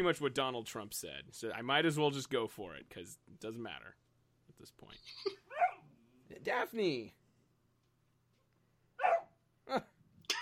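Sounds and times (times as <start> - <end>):
speech: 0.0 - 4.0, 4.6 - 5.5, 6.3 - 7.2, 9.7 - 9.9
dog barking sharply: 5.5 - 5.9, 9.0 - 9.4.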